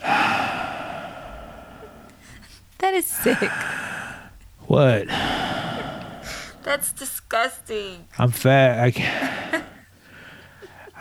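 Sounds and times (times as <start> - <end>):
single heavy airy breath: 0.0 - 4.4, 5.0 - 6.7, 9.0 - 11.0
speech: 3.0 - 3.8, 4.7 - 5.4, 6.7 - 9.4.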